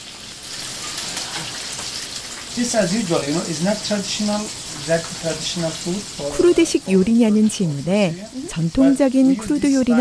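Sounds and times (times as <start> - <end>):
fish coated in a special seasoning frying in oil: 0.0 - 9.9
speech: 2.6 - 9.9.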